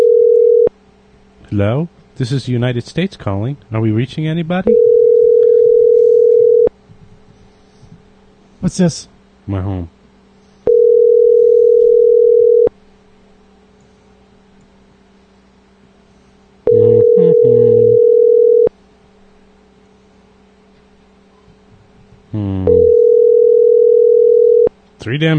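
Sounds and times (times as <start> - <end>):
telephone ringback tone over an unanswered line: 0.0 - 0.7, 4.7 - 6.7, 10.7 - 12.7, 16.7 - 18.7, 22.7 - 24.7
speech: 1.5 - 4.9, 8.6 - 10.0, 25.1 - 25.3.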